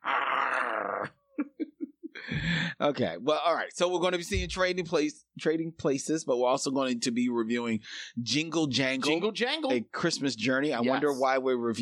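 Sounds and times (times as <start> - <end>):
man imitating a growl: 0.0 - 1.2
speech: 2.8 - 11.7.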